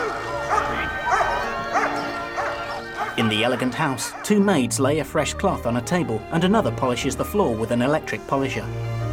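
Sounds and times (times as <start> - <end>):
Alsatian dog barking on a lead: 0.0 - 4.3
speech: 3.2 - 9.0.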